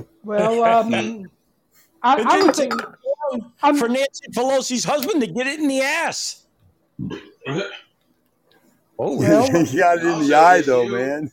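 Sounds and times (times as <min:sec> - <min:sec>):
speech: 0:00.0 - 0:01.4, 0:02.0 - 0:06.4, 0:07.0 - 0:07.8, 0:09.0 - 0:11.3
throaty burps: 0:07.0 - 0:07.9.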